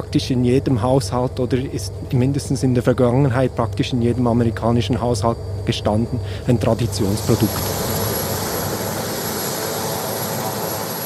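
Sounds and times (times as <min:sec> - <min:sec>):
speech: 0:00.0 - 0:08.0
helicopter flying overhead with steady engine roar: 0:03.9 - 0:11.0.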